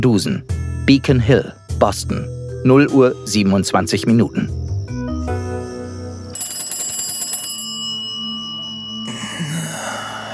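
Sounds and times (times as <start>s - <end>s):
speech: 0.0s - 4.6s
old-fashioned telephone bell ringing in a house: 6.4s - 9.4s.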